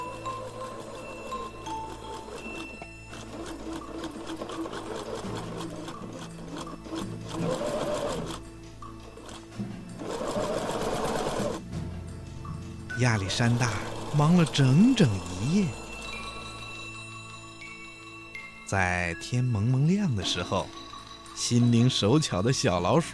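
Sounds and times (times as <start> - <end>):
sewing machine running: 0.0 - 11.6, 13.1 - 16.9
speech: 13.0 - 15.8, 18.7 - 20.8, 21.4 - 23.1.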